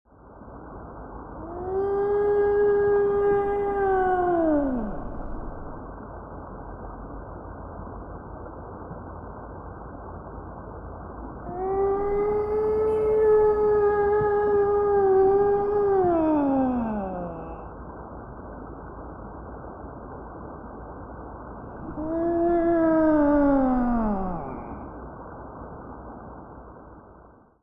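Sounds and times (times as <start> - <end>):
whale call underwater: 1.4 - 5.9, 11.4 - 17.7, 21.7 - 24.9.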